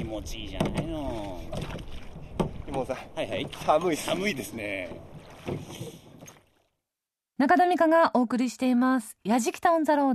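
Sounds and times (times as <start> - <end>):
oar strokes churning the pond surface from a small rowboat: 0.0 - 6.8
speech: 0.1 - 2.0, 2.7 - 6.0, 7.4 - 10.1.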